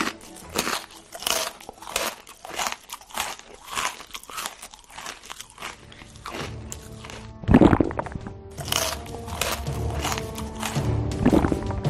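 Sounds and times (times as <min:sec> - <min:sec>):
man chewing food noisily: 0:00.0 - 0:11.8
gurgling throat sounds: 0:07.4 - 0:08.3, 0:11.1 - 0:11.8
man swallowing food: 0:07.4 - 0:08.3.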